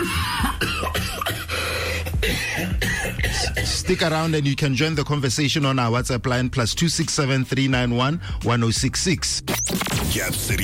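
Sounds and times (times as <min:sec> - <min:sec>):
person coughing: 0:00.0 - 0:04.1
speech: 0:00.6 - 0:01.0, 0:03.9 - 0:09.5, 0:10.1 - 0:10.6.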